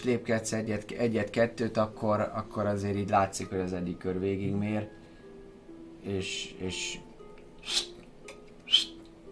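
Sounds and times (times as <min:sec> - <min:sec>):
speech: 0:00.0 - 0:05.0, 0:06.0 - 0:07.0, 0:07.6 - 0:08.0
short airy human whistles: 0:07.6 - 0:08.0, 0:08.6 - 0:09.1.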